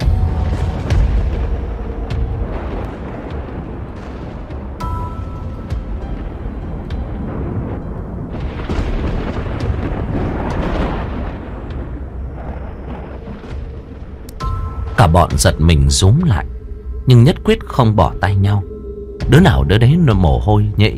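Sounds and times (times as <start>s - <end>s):
thunder rumbling after a lightning flash: 0.0s - 20.9s
speech: 15.0s - 20.9s.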